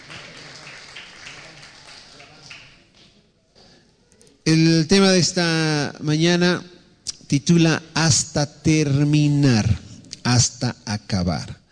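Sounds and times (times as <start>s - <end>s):
audience applause: 0.0s - 2.8s
speech: 4.5s - 6.7s, 7.3s - 11.6s.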